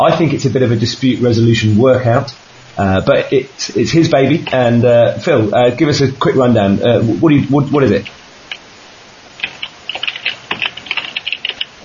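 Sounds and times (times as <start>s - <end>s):
speech: 0.0s - 8.2s
typing on computer keyboard keys: 9.4s - 11.8s.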